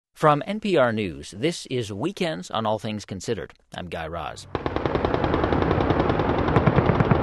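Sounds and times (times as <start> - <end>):
speech: 0.2 - 5.5
automatic gunfire bursts: 4.5 - 7.2.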